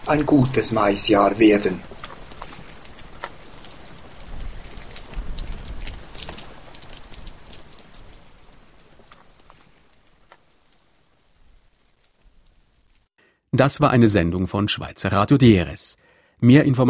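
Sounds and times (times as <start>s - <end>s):
crisp rain drips striking a surface: 0.0s - 10.5s
steady rain falling: 0.0s - 13.1s
speech: 0.1s - 1.9s, 13.6s - 16.8s.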